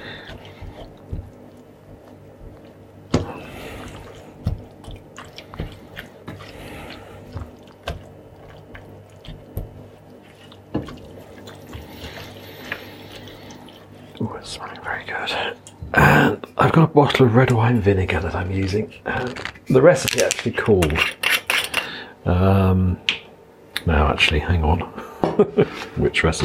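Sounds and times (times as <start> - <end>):
dark muscovado sugar stirred into thick chutney: 0.0 - 15.8
low steady hum: 0.0 - 26.4
speech: 16.6 - 21.2, 22.2 - 23.1, 23.8 - 26.4.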